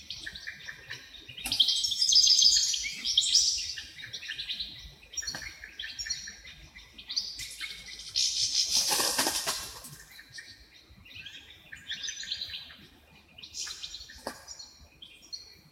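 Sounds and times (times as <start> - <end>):
dozens of wrens chirping and trilling in a backyard in southern Tasmania: 0.0 - 15.7.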